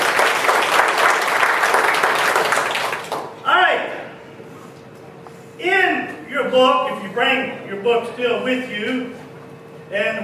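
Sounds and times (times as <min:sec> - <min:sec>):
church congregation applauding: 0:00.0 - 0:03.4
speech: 0:06.6 - 0:09.2, 0:09.9 - 0:10.2.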